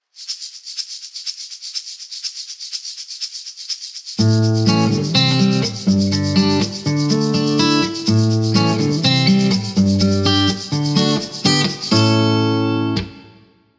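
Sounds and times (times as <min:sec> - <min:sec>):
musical notes: 0:04.2 - 0:13.2.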